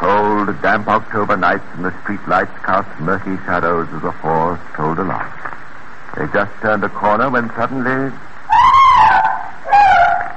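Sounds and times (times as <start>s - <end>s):
speech: 0.6s - 8.3s
woman screaming: 8.5s - 10.3s.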